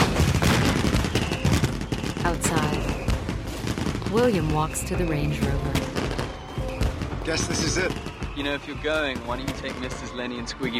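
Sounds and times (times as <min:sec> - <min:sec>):
fireworks bangs and crackles: 0:00.0 - 0:10.7
speech: 0:02.3 - 0:02.9, 0:04.1 - 0:05.8, 0:07.2 - 0:10.7.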